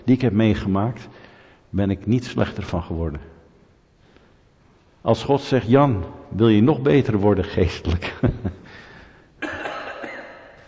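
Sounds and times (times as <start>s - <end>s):
speech: 0.1s - 3.3s, 5.0s - 8.6s
cough: 9.4s - 10.6s.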